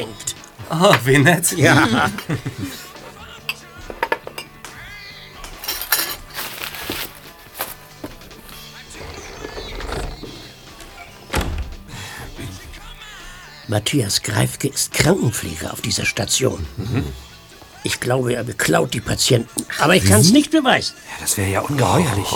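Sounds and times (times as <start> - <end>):
speech: 0.0 - 2.8, 13.7 - 22.3
laughter: 1.6 - 3.2, 16.7 - 17.3
dishes and cutlery clattering as a nurse clears a patient's meal on a hospital ward: 3.5 - 4.6, 5.5 - 7.0.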